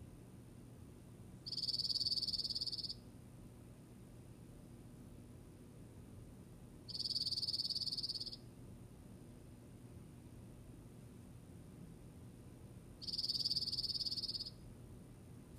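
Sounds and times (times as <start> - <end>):
soft steady hiss: 0.0 - 15.5
Dark-eyed Junco trill: 1.5 - 3.0, 6.9 - 8.4, 13.0 - 14.6.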